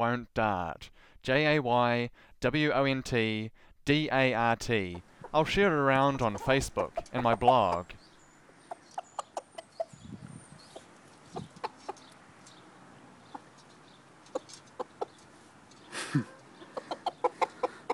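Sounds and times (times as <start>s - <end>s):
speech: 0.0s - 8.0s, 16.1s - 16.3s
faint outdoor noise: 0.0s - 17.9s
rooster clucking: 6.1s - 10.0s, 10.6s - 12.2s, 14.2s - 17.9s.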